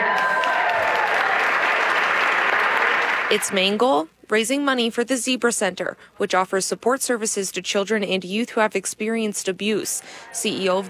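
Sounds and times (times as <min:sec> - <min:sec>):
applause at a fundraiser: 0:00.0 - 0:03.6
speech: 0:03.3 - 0:10.8.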